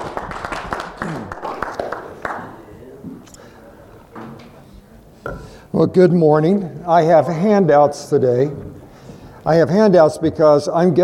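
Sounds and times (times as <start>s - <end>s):
audience applause: 0.0s - 2.6s
speech: 5.8s - 8.8s, 9.4s - 11.0s.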